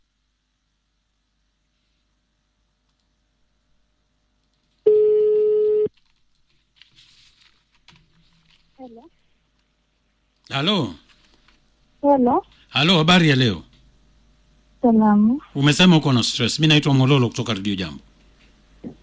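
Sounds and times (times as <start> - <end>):
faint clicks and rustles: 4.4 - 4.9, 5.9 - 11.9
ringback tone of an outgoing telephone call: 4.9 - 5.9
speech: 10.5 - 11.0, 12.0 - 13.7, 14.8 - 18.1.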